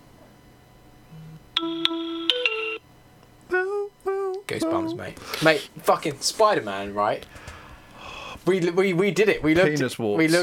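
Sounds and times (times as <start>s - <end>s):
phone text message notification tone played into a microphone: 1.6s - 2.8s
speech: 4.5s - 7.5s, 8.4s - 10.4s.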